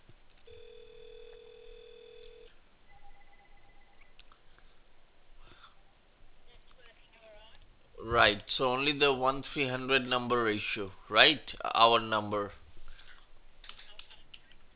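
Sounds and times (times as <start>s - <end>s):
low hiss on a narrow phone line: 0.5s - 4.2s
telephone tones while a landline number is dialed: 0.5s - 4.2s
speech: 8.1s - 12.6s.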